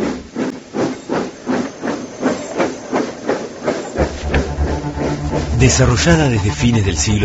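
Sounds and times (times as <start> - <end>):
steam engine hissing and chuffing: 0.0 - 7.2
low mechanical rumble: 4.0 - 7.2
speech: 5.6 - 7.2.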